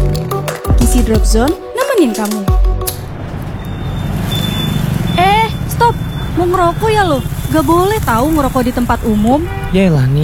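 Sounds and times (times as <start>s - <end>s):
speech: 1.0s - 2.7s, 5.8s - 10.2s
road traffic in a jam engine rumble: 2.8s - 10.2s.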